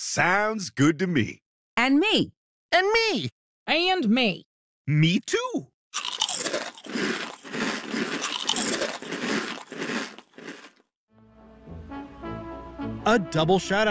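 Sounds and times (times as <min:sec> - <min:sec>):
speech: 0:00.0 - 0:06.1, 0:13.0 - 0:13.8
crunching plain potato chips: 0:06.0 - 0:10.8.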